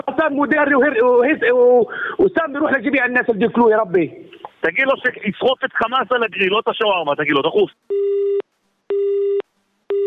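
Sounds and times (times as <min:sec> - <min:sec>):
speech: 0:00.2 - 0:08.3
telephone busy tone after a call is hung up: 0:07.9 - 0:10.0.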